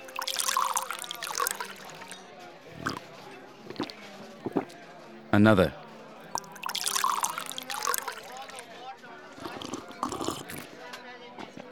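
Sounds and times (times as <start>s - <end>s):
whiskey poured into a glass: 0.0s - 3.1s, 3.7s - 4.8s, 6.4s - 8.7s, 9.4s - 10.7s
speech: 5.4s - 5.8s.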